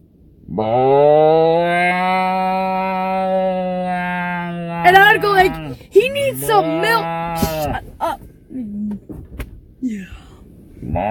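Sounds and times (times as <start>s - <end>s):
speech: 0.5s - 1.4s
person's voice imitating a cow mooing: 0.5s - 8.2s.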